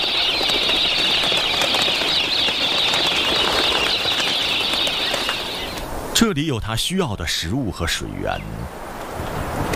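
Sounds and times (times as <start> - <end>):
many pink cockatoo wings flapping near farmland: 0.0 - 5.9
speech: 6.2 - 9.6.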